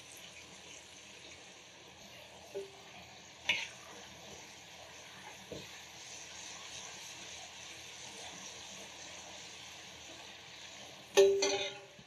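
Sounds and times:
food frying in hot oil: 0:00.0 - 0:12.0
utensils clacking against the pan: 0:03.4 - 0:03.9, 0:11.1 - 0:12.0.

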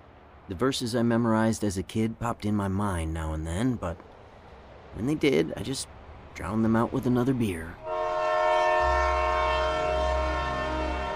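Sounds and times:
deep rolling rumble of heavy freight cars passing: 0:00.0 - 0:11.1
speech: 0:00.5 - 0:04.1, 0:05.0 - 0:07.8
freight train horn blaring: 0:07.8 - 0:11.1.

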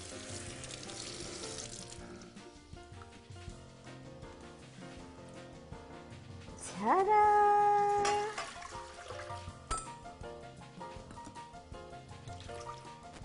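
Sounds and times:
warm tap water running from a sink into a measuring cup: 0:00.0 - 0:02.1, 0:08.0 - 0:09.5
speech: 0:06.8 - 0:07.6.

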